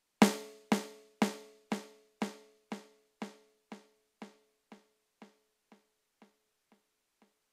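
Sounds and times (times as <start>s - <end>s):
snare drum with ping-pong delay: 0.0s - 7.4s.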